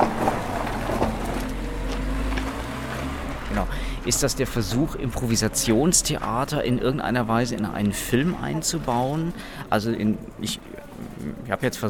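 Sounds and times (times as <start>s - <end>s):
car driving past with engine rumble and road noise: 0.0s - 6.4s
speech: 4.0s - 11.8s.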